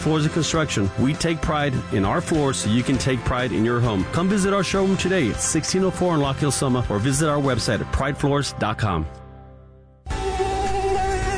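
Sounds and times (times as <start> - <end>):
speech: 0.0 - 9.2
mosquito buzzing: 10.1 - 11.3.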